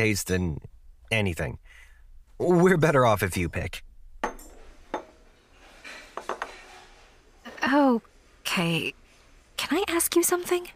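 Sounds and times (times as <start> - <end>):
speech: 0.0 - 1.8, 2.4 - 3.9, 7.6 - 9.0, 9.6 - 10.7
dishes and cutlery clinking in a restaurant: 4.2 - 7.2.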